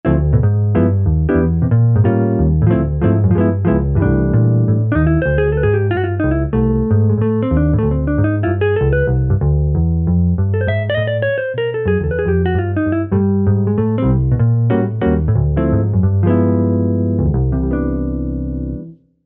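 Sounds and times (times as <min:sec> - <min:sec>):
jazz guitar: 0:00.0 - 0:18.9.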